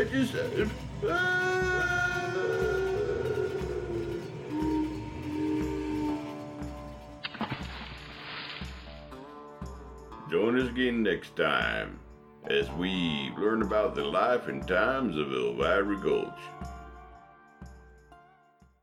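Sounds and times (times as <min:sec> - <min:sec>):
speech: 0:00.1 - 0:02.6, 0:10.6 - 0:16.6
drawn-out train whistle: 0:01.0 - 0:06.7.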